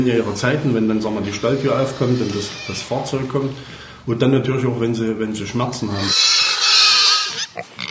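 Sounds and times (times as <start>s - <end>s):
speech: 0.0s - 6.4s
domestic livestock pig squealing high-pitched: 0.2s - 3.7s, 5.8s - 7.8s.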